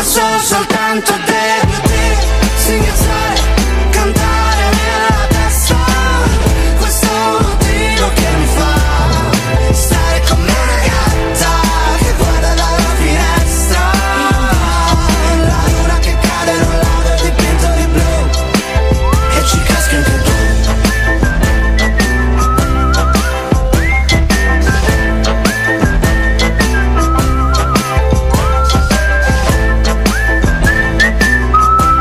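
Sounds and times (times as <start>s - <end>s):
pop backing track with bass and drums: 0.0s - 32.0s
speech: 0.2s - 1.8s
whistled melody in a pop song: 1.9s - 32.0s.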